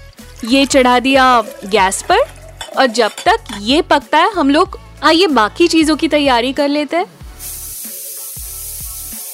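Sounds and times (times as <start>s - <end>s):
speech: 0.4s - 7.2s
pressure cooker weight jiggling and rattling: 1.5s - 3.7s
pressure cooker whistle releasing steam: 7.4s - 9.3s.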